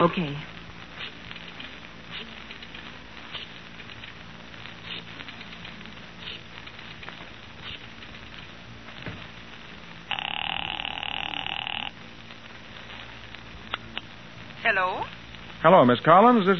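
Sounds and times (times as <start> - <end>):
speech: 0.0 - 0.6, 14.8 - 16.5
steady rough hiss: 0.0 - 16.5
telephone ringback tone on the line during an outgoing call: 10.1 - 11.9.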